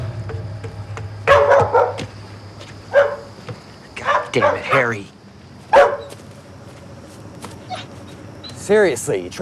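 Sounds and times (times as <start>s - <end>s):
dog barking beside water: 1.3s - 2.1s, 2.9s - 3.3s, 4.0s - 4.8s, 5.7s - 6.2s
speech: 4.3s - 5.2s, 8.7s - 9.3s.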